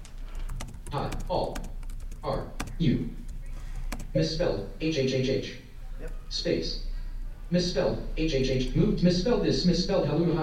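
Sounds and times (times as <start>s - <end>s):
typing on a computer keyboard: 0.0s - 2.8s, 3.9s - 4.1s
speech: 0.9s - 3.2s, 4.2s - 5.6s, 6.3s - 6.9s, 7.5s - 10.4s.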